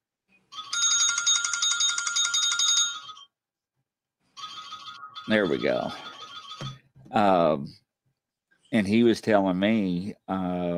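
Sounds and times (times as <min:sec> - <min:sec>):
studio phone ringing: 0:00.5 - 0:03.4, 0:04.4 - 0:07.0
speech: 0:05.3 - 0:06.1, 0:07.1 - 0:07.8, 0:08.7 - 0:10.7.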